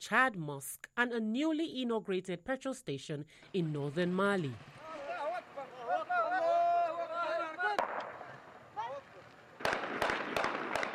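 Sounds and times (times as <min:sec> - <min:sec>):
speech: 0:00.0 - 0:04.8
excited voices: 0:04.8 - 0:09.2
gunshots fired into the air by armed fighters celebrating: 0:07.7 - 0:08.4, 0:09.6 - 0:10.9.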